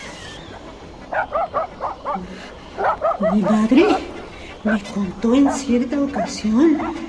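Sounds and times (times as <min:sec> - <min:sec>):
dog barking: 0:01.1 - 0:04.1, 0:05.3 - 0:05.9
speech: 0:01.2 - 0:01.6, 0:03.2 - 0:07.0.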